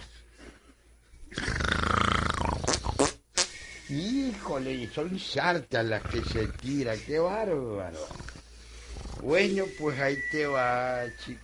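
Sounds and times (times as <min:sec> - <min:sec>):
man sleeping on a cot snoring: 0:01.3 - 0:03.0, 0:05.9 - 0:06.9, 0:07.8 - 0:09.9
speech: 0:03.9 - 0:08.2, 0:09.2 - 0:11.4.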